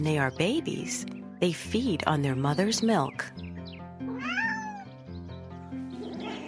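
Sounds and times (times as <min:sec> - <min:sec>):
speech: 0:00.0 - 0:03.4
kitten meowing: 0:04.1 - 0:05.0.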